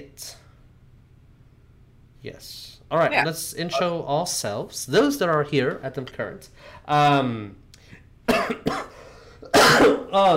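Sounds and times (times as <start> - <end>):
speech: 2.2 - 7.6, 8.3 - 8.9, 9.6 - 10.3
person coughing harshly: 8.3 - 10.3.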